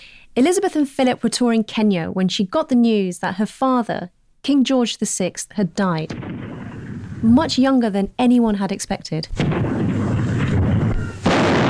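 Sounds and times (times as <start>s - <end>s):
speech: 0.4s - 9.8s
artillery guns firing a ceremonial salute at the Tower: 6.1s - 7.6s, 9.4s - 11.6s.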